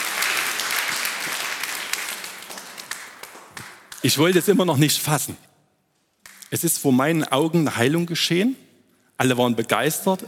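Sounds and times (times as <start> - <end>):
audience applause: 0.0 - 4.2
speech: 4.0 - 5.5, 6.5 - 8.6, 9.2 - 10.2.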